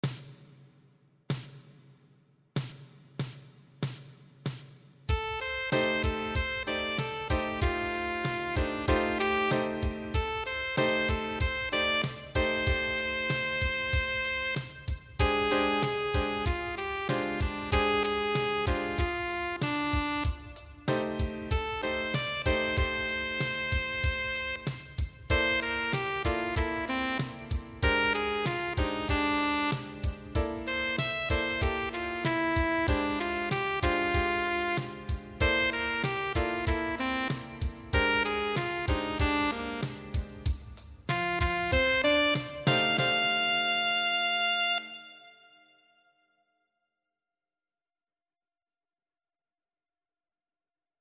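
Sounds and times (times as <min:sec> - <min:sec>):
bass playalong music: 0:05.1 - 0:45.3.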